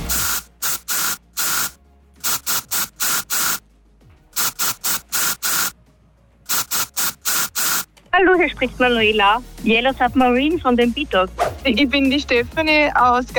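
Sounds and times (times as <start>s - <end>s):
deodorant spray can hissing in rhythmic bursts: 0.0s - 3.6s, 4.4s - 5.8s, 6.5s - 7.9s
speech: 8.2s - 13.3s.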